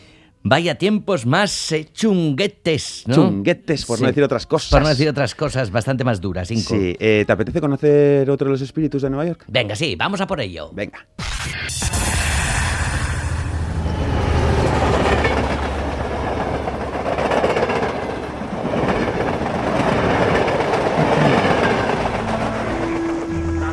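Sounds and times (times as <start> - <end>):
speech: 0.4 - 12.2
train passing overhead in New York: 12.4 - 23.7
rhythmic rail clatter: 13.6 - 23.7.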